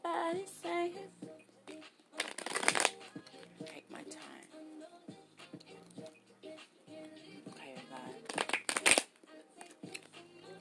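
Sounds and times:
riffle of playing cards being shuffled: 2.2 - 3.5, 7.8 - 10.2.

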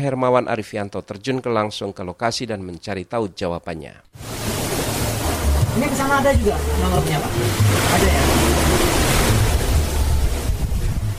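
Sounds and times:
speech: 0.0 - 4.3, 5.8 - 8.9
surf washing in on Bengkak Beach facing the Bali Strait: 4.2 - 11.1
wind buffeting the microphone: 9.2 - 11.1.

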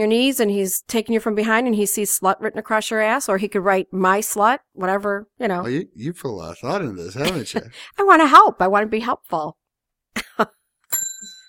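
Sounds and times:
speech: 0.0 - 9.6, 10.2 - 10.6
laughter: 5.7 - 7.8
breathy bursts: 6.2 - 8.0
small bell ding rung as a blushing sound effect: 10.9 - 11.4.

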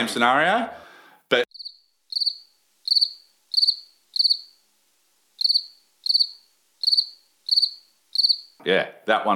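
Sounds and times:
speech: 0.0 - 1.4, 8.6 - 9.3
cricket-chirp prank device chirping: 1.5 - 4.6, 5.4 - 8.6.

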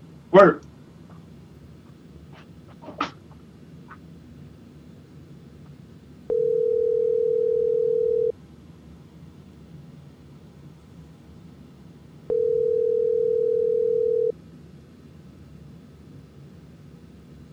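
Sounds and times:
faint hiss: 0.0 - 17.5
outgoing phone call ringback tone: 6.3 - 8.3, 12.3 - 14.4.

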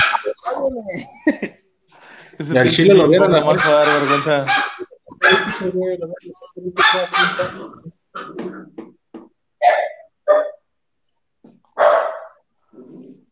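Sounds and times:
dogs barking: 0.0 - 0.7, 3.1 - 8.8, 9.6 - 10.7, 11.8 - 12.5
laughter: 0.0 - 7.9
speech: 0.6 - 1.5, 2.4 - 4.7, 5.6 - 8.8.

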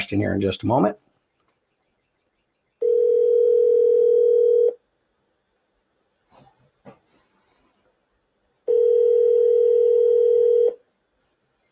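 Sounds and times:
speech: 0.1 - 1.1
phone call ringing tone: 2.8 - 4.8, 8.6 - 10.8.

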